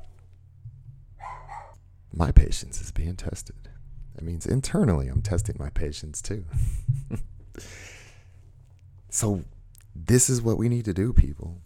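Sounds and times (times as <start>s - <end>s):
low steady hum: 0.0s - 11.6s
dog barking: 1.2s - 1.8s
speech: 2.1s - 7.9s, 9.1s - 11.6s.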